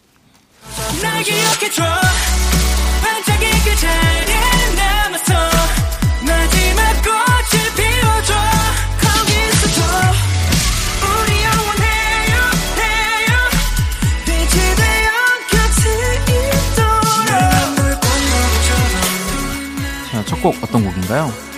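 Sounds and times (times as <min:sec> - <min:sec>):
densely produced K-pop boy group song with bright synths and punchy beats: 0:00.6 - 0:21.5
speech: 0:01.2 - 0:02.2, 0:20.4 - 0:21.5.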